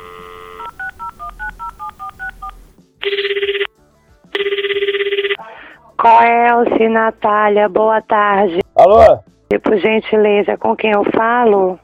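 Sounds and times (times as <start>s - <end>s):
touch-tone phone dial tone: 0.0s - 3.7s, 4.4s - 5.4s
speech: 6.0s - 11.8s.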